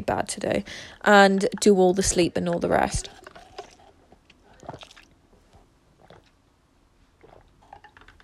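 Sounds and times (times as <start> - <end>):
speech: 0.0 - 3.2
loud wet gulping of water: 0.0 - 8.2.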